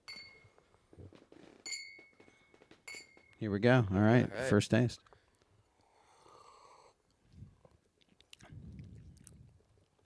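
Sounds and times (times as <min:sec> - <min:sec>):
champagne glasses clinking in a toast: 0:01.6 - 0:03.4
speech: 0:03.4 - 0:05.1.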